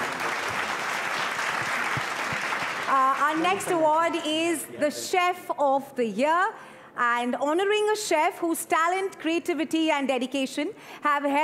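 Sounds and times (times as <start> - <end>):
large crowd applauding: 0.0 - 3.8
speech: 2.9 - 11.4.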